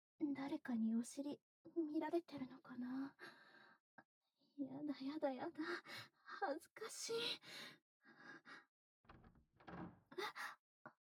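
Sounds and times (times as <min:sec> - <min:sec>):
speech: 0:00.2 - 0:03.4, 0:04.6 - 0:10.6
door opening as someone enters: 0:09.1 - 0:10.0.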